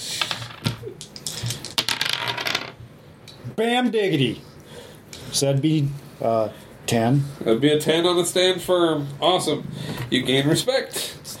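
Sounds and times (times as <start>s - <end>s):
dice rattling and being rolled: 0.2s - 2.8s
speech: 3.6s - 4.5s, 5.3s - 11.3s.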